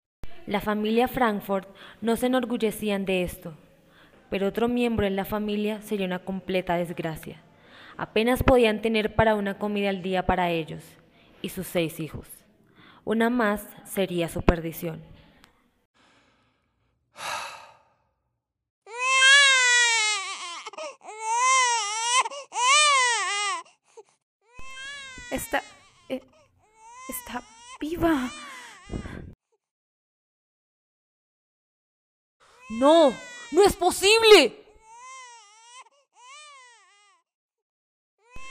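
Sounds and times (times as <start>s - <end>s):
speech: 0.5s - 3.6s, 4.3s - 7.4s, 8.0s - 12.4s, 13.0s - 15.1s, 17.2s - 17.4s, 25.3s - 26.3s, 27.1s - 29.1s, 32.7s - 34.6s
baby gasping breaths: 16.0s - 18.1s, 20.7s - 21.2s, 23.5s - 24.2s, 25.1s - 29.4s
baby crying: 18.9s - 29.4s, 32.5s - 37.3s, 38.2s - 38.4s.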